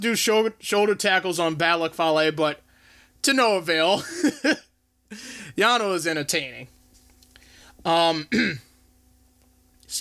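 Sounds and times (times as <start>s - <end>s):
speech: 0.0s - 2.6s, 3.2s - 6.8s, 7.8s - 8.7s
person clearing throat: 8.2s - 8.7s.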